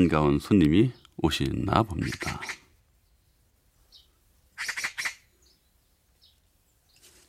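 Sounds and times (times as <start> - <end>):
speech: 0.0 - 2.6
magpie chattering outdoors: 1.8 - 2.7, 4.0 - 5.3.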